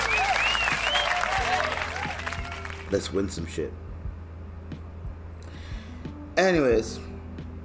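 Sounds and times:
high whistles: 0:00.0 - 0:02.7
large crowd applauding: 0:00.0 - 0:03.0
speech: 0:02.9 - 0:03.8, 0:06.4 - 0:07.1.

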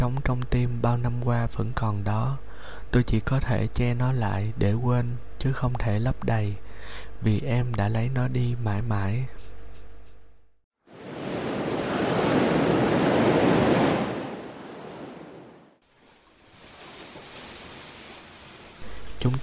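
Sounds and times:
speech: 0:00.0 - 0:09.5, 0:19.2 - 0:19.4
sea waves crashing against rocks: 0:10.9 - 0:18.8.

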